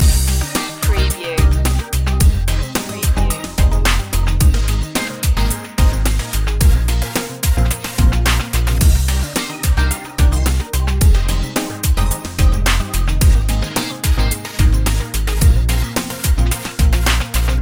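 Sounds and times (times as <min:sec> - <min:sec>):
electro groove loop: 0:00.0 - 0:17.5.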